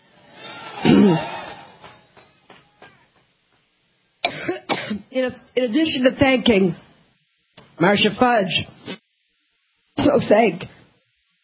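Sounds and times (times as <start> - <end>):
person coughing: 0.8 - 1.4, 4.2 - 5.1
speech: 1.0 - 1.3, 5.2 - 6.8, 7.8 - 9.0, 10.1 - 10.8
throat-clearing coughs: 4.2 - 5.1.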